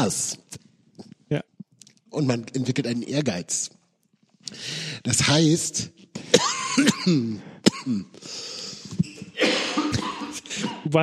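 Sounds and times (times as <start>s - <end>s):
speech: 0.0s - 0.4s, 2.2s - 3.8s, 4.4s - 9.6s, 10.9s - 11.0s
person clearing throat: 6.2s - 8.2s, 8.9s - 10.9s
person coughing: 6.2s - 8.5s, 9.4s - 11.0s.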